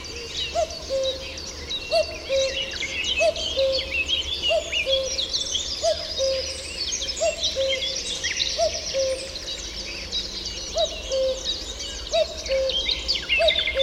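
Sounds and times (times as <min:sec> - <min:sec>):
common cuckoo two-note call: 0:00.0 - 0:06.6, 0:07.2 - 0:09.4, 0:10.7 - 0:13.8
dense background chorus of small birds: 0:00.0 - 0:13.8.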